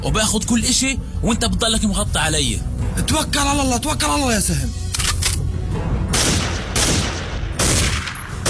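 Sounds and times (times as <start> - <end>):
speech: 0.0 - 4.8
gunfire in rapid volleys with rolling echo: 6.1 - 8.4.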